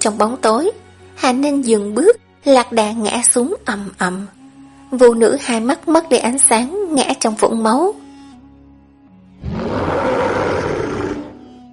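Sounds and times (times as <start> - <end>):
speech: 0.0 - 8.0
wild beast roaring in the desert night: 9.4 - 11.5.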